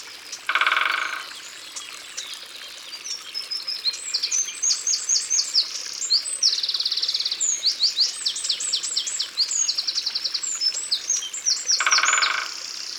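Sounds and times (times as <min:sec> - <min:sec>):
Eurasian wren in Ardeche: 0:00.5 - 0:01.3, 0:11.7 - 0:12.9.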